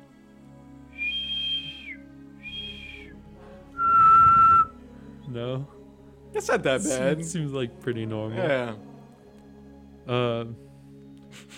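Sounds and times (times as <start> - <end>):
person whistling: 0.9 - 3.2, 3.8 - 4.8
speech: 6.4 - 8.9, 10.1 - 10.7.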